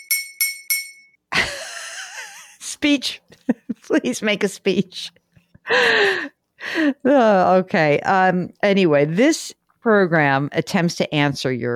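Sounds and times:
knife tapping a drinking glass: 0:00.0 - 0:01.2
speech: 0:02.8 - 0:11.7.

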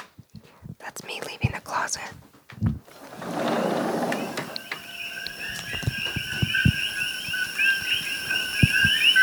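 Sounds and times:
speech: 0:01.0 - 0:03.7
invasive coqui frogs calling at night on the Big Island near Hilo: 0:03.4 - 0:09.2.

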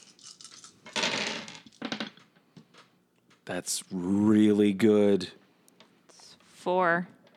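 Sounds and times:
handful of dice rolled in a role-playing game clattering: 0:00.0 - 0:02.9
speech: 0:03.5 - 0:05.4, 0:06.6 - 0:07.2.

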